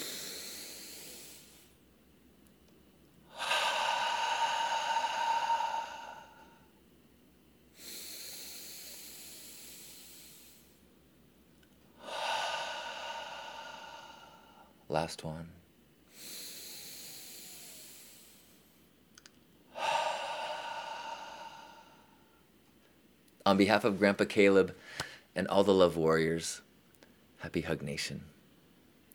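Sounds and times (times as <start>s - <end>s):
deep inhale through the nose: 0.0s - 1.8s, 3.3s - 6.8s, 7.7s - 10.9s, 12.0s - 14.8s, 16.1s - 18.9s, 19.7s - 22.4s
long airy exhale: 0.0s - 1.8s, 3.3s - 6.8s, 7.7s - 10.9s, 12.0s - 14.8s, 16.1s - 18.8s, 19.7s - 22.4s
speech: 14.9s - 15.6s, 23.5s - 26.6s, 27.4s - 28.4s.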